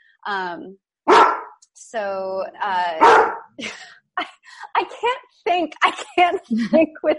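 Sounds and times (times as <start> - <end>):
speech: 0.2 - 1.3, 1.9 - 4.4, 5.0 - 7.1
dog barking with sharp barks and whiny yelps: 1.1 - 1.6, 3.0 - 3.5.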